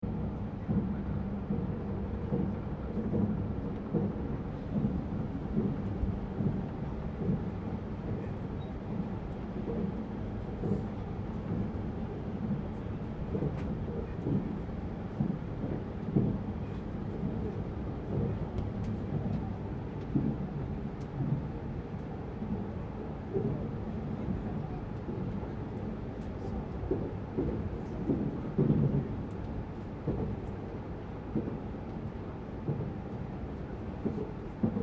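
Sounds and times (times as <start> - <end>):
express train seating area interior ambience: 0.0 - 34.8.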